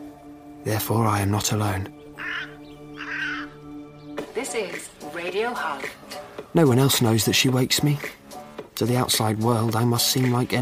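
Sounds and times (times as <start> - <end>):
speech: 0.6 - 2.0, 4.4 - 8.2, 8.8 - 10.5
crow cawing: 2.1 - 3.8.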